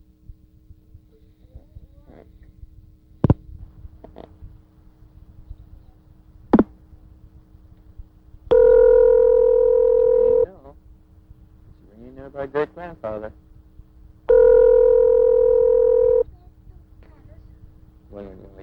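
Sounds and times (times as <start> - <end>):
telephone ring tones heard over the line: 8.5 - 10.6, 14.3 - 16.2.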